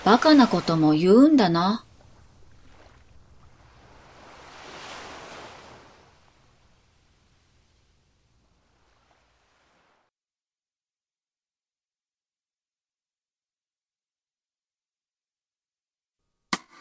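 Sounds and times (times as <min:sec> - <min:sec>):
speech: 0:00.0 - 0:01.9
ocean waves breaking on the shore: 0:00.0 - 0:10.1.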